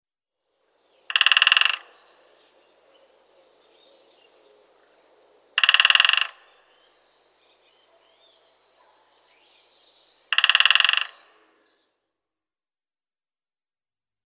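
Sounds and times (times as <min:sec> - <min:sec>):
great spotted woodpecker drumming: 0:00.9 - 0:11.6.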